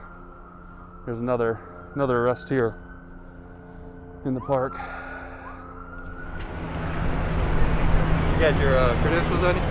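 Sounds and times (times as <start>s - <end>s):
speech: 1.0s - 2.8s, 4.2s - 5.0s, 8.4s - 9.6s
police car engine and road noise in Detroit: 6.0s - 9.6s.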